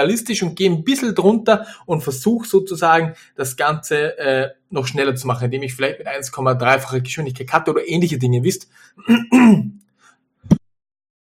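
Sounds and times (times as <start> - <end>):
speech: 0.0 - 9.8
cough: 9.0 - 9.7
throat clearing: 9.0 - 9.7.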